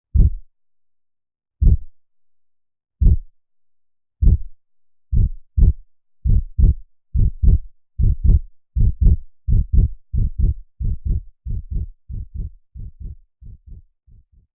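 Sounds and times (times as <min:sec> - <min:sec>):
heartbeat: 0:00.1 - 0:00.5, 0:01.6 - 0:01.9, 0:03.0 - 0:03.3, 0:04.2 - 0:04.5, 0:05.1 - 0:14.5.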